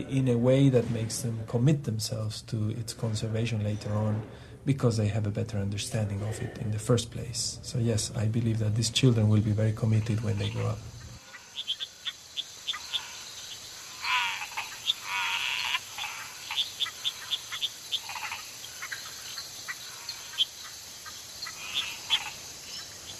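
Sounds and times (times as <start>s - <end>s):
speech: 0.0s - 10.9s
steady drone of insects: 0.0s - 23.1s
nighttime chorus of croaking frogs: 8.0s - 23.1s.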